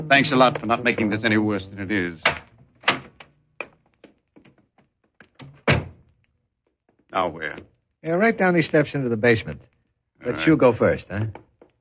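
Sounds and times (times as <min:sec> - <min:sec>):
speech: 0:00.1 - 0:02.4, 0:07.2 - 0:11.4
door opening and shutting: 0:02.2 - 0:04.6, 0:05.2 - 0:06.1.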